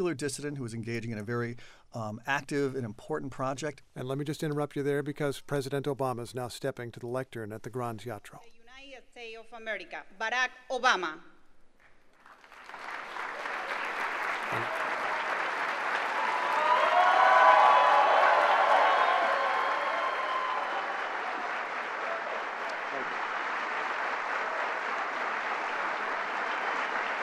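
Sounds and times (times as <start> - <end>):
speech: 0.0 - 11.3
large theater audience applauding: 12.2 - 27.2
scattered cheers from theater audience: 13.5 - 23.2.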